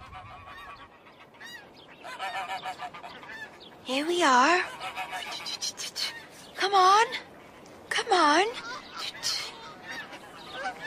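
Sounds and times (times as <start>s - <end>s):
snow goose honking: 0.0s - 6.3s, 8.6s - 10.8s
speech: 3.9s - 7.3s, 8.0s - 8.7s.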